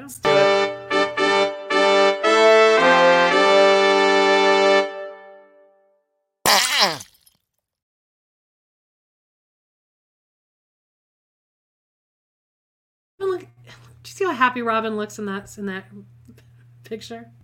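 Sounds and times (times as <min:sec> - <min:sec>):
short brassy jingle of stepped horn-like notes: 0:00.2 - 0:05.7
wet fart sound effect: 0:06.5 - 0:07.4
speech: 0:14.0 - 0:17.4.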